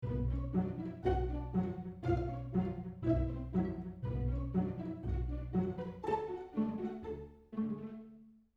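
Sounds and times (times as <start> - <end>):
pizzicato strings playing a classical piece: 0.0 - 8.4.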